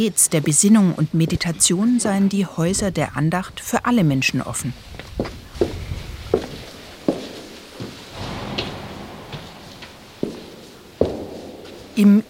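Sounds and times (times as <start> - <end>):
speech: 0.0 - 5.4, 12.0 - 12.2
soft muffled footsteps on carpet: 2.8 - 12.2.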